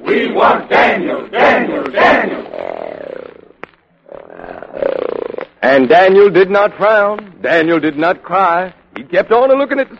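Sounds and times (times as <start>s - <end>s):
speech: 0.1s - 2.4s, 5.7s - 9.9s
lion roaring: 2.2s - 5.5s.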